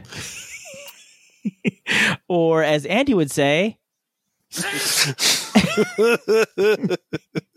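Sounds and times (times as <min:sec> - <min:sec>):
person laughing: 0:00.1 - 0:01.9, 0:04.6 - 0:07.5
speech: 0:02.3 - 0:03.8, 0:04.5 - 0:07.5
person sneezing: 0:04.6 - 0:05.6.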